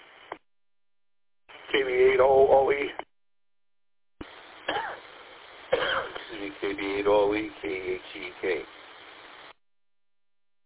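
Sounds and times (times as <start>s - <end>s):
thin steady radio hiss: 0.0s - 0.4s, 1.5s - 3.1s, 4.2s - 9.6s
speech: 1.7s - 3.0s, 6.6s - 8.8s
single short cough: 4.7s - 5.0s, 5.8s - 6.4s.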